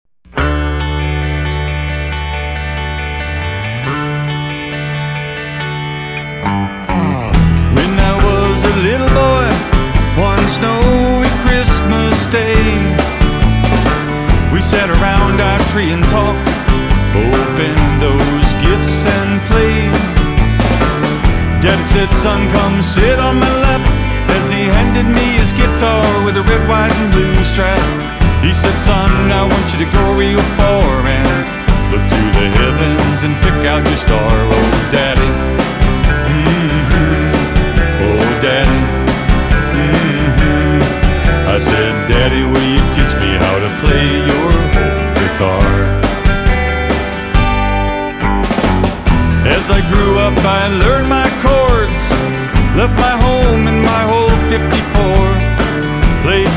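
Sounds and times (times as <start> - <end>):
guitar sample: 0.0 - 56.5.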